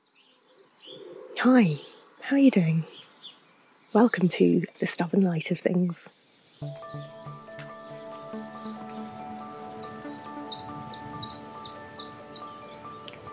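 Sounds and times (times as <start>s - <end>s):
speech: 1.4s - 2.9s, 3.9s - 7.2s
Common Chiffchaff singing short sharp notes: 6.6s - 13.3s
sustained droning musical tone: 6.6s - 13.3s.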